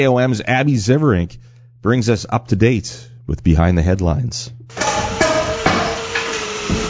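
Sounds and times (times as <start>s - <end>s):
speech: 0.0s - 5.2s
steady hum: 0.0s - 6.8s
hammers striking wood at an outdoor building site: 4.8s - 6.8s.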